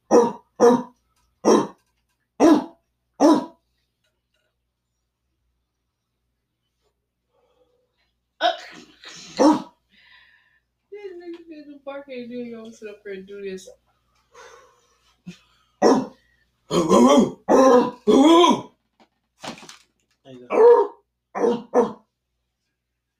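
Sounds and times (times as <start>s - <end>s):
people imitating dog barks: 0.0s - 1.8s, 2.4s - 3.6s, 9.4s - 9.8s, 15.8s - 18.7s, 20.5s - 22.0s.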